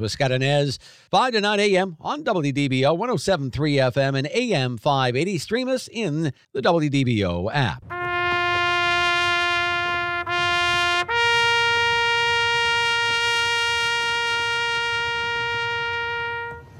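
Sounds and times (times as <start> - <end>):
speech: 0.0 - 8.0
bugle call on a bugle: 7.9 - 16.7.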